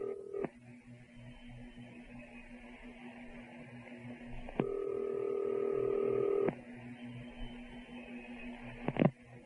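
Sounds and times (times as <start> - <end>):
long electronic ring over a telephone receiver: 0.0 - 0.5, 4.6 - 6.5
short telephone dialing beeps: 0.0 - 0.5, 4.6 - 9.1
telephone line humming with a steady tone: 0.0 - 0.5, 4.5 - 9.2.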